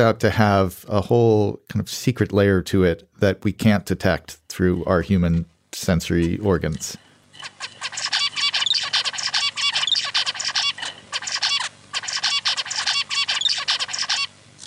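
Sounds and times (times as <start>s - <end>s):
speech: 0.0s - 7.7s
zebra finch singing: 7.7s - 14.3s.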